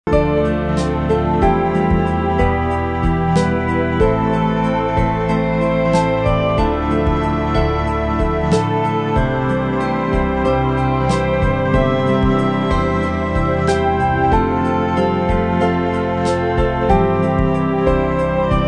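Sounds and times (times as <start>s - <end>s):
soulful melody played on string instruments: 0.0s - 18.6s.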